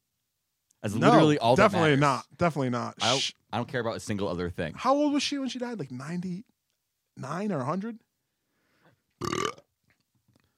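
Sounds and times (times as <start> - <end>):
speech: 0.8 - 6.5, 7.2 - 8.0
loud burp: 9.2 - 9.7.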